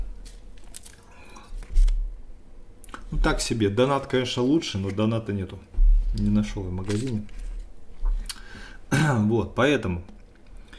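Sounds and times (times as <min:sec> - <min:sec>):
speech: 0:03.2 - 0:07.4, 0:09.1 - 0:10.1
soft low thump: 0:05.7 - 0:06.2
person sipping mineral water: 0:08.0 - 0:08.5.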